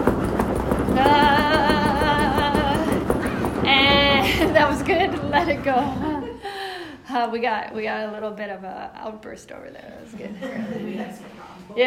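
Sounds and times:
people stamping and stomping their feet on a floor in a mock temper tantrum: 0.0 - 6.4
sustained wavering vocal tone: 0.9 - 6.3
speech: 1.0 - 1.3, 4.6 - 6.1, 7.1 - 11.8.

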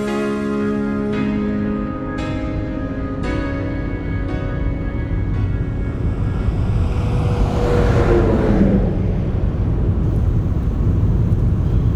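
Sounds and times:
road noise: 0.2 - 11.9
car engine rumble driving down to the water: 0.7 - 11.9
rising whoosh: 3.9 - 11.1.

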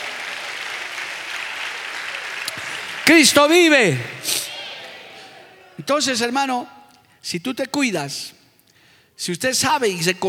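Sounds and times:
crowd applauding: 0.0 - 5.8
speech: 3.1 - 4.5, 5.8 - 8.4, 9.2 - 10.2.

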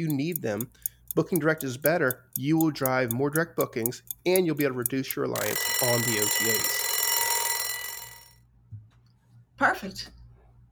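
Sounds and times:
speech: 0.0 - 6.8, 9.6 - 10.2
timer buzzer going off: 5.4 - 8.3.

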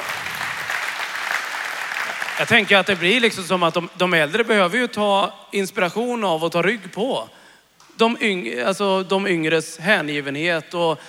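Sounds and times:
small group applauding: 0.0 - 3.5
speech: 2.4 - 7.4, 8.0 - 11.0.

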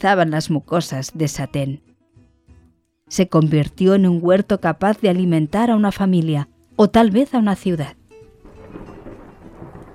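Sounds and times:
speech: 0.0 - 1.9, 3.1 - 8.0
deep thunder rumbling from a tropical storm in a forest: 8.3 - 9.9.

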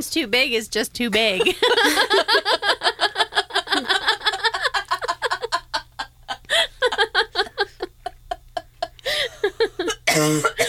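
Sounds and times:
speech: 0.0 - 2.9
laughter: 1.4 - 9.9
person coughing and choking: 9.8 - 10.6.

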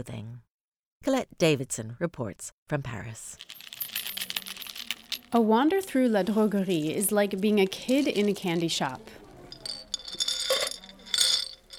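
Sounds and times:
speech: 0.0 - 3.8, 5.3 - 9.2
glass bottles clinking and rattling in a craft shop in Paris: 3.4 - 5.3, 9.6 - 11.7.

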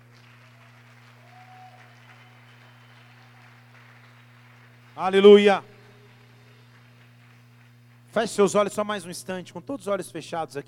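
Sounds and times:
audience applauding: 0.0 - 8.5
constant low electrical hum: 0.0 - 10.6
speech: 5.0 - 5.7, 8.2 - 10.6.

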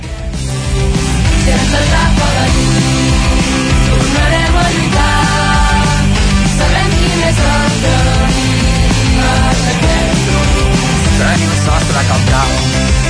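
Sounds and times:
full-band song with layered instruments and driving beat: 0.0 - 13.0.

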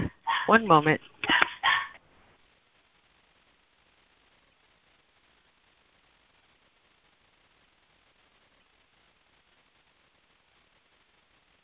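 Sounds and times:
small dog yapping: 0.0 - 0.6, 1.3 - 2.0
speech: 0.5 - 1.1.

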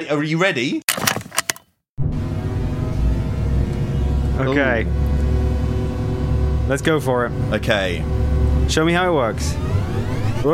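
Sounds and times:
speech: 0.0 - 1.0, 4.4 - 5.1, 6.7 - 10.5
quick clicks: 0.9 - 1.6
synthetic futuristic racing car engine roar with deep rumble: 2.0 - 10.5.

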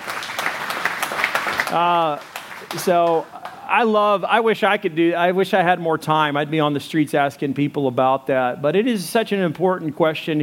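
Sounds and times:
audience applause: 0.0 - 3.6
speech: 1.7 - 10.4.

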